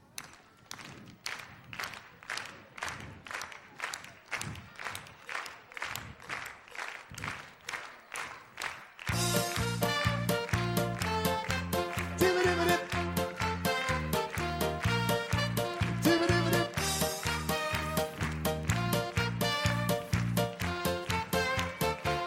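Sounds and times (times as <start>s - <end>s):
group of people clapping hands: 0.0s - 22.2s
bright music: 9.1s - 22.2s.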